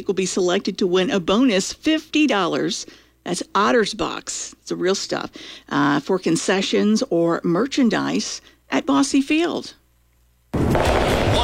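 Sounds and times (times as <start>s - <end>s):
speech: 0.0s - 9.8s
fireworks exploding at a large riverfront display: 10.6s - 11.4s.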